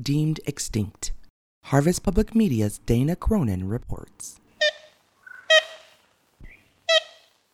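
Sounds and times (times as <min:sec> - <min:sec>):
speech: 0:00.0 - 0:04.4
ivory-billed woodpecker calling: 0:04.5 - 0:07.4.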